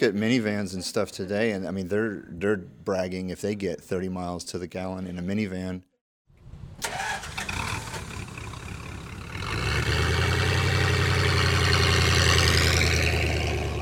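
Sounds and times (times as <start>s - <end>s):
speech: 0.0s - 5.9s
three-wheeled Dymaxion car engine cranking and idling: 6.5s - 13.8s.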